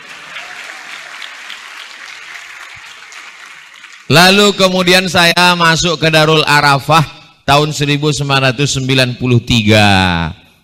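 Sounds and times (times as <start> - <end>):
audience applause from a crowd at a gathering: 0.0 - 4.2
speech: 4.1 - 10.4.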